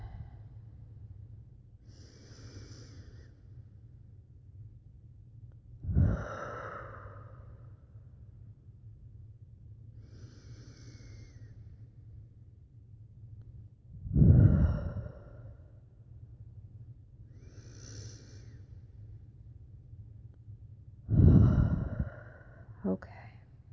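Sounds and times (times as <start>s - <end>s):
slow deep breathing close to the microphone: 0.0s - 0.9s, 1.8s - 3.9s, 5.8s - 8.4s, 9.9s - 12.0s, 13.9s - 16.2s, 17.3s - 19.2s, 21.0s - 22.8s
low steady hum: 0.0s - 23.7s.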